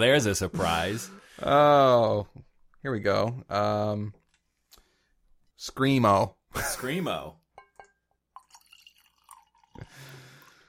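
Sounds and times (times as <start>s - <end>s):
speech: 0.0s - 4.2s, 5.6s - 7.4s
wine drips and splashes: 7.6s - 10.6s
wine pouring into a glass: 7.6s - 10.6s.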